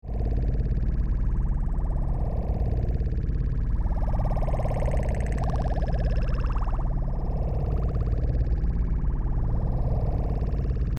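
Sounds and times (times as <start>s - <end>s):
alien spaceship interior ambience: 0.1s - 10.9s.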